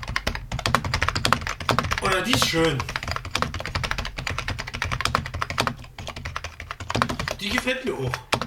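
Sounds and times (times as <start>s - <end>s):
rapid typing on a rubber-dome office computer keyboard: 0.0s - 8.4s
speech: 2.1s - 3.0s, 7.4s - 8.3s.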